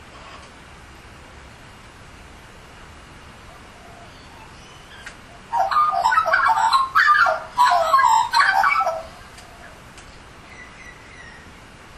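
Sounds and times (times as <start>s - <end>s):
Australian magpie carolling: 3.6s - 9.8s.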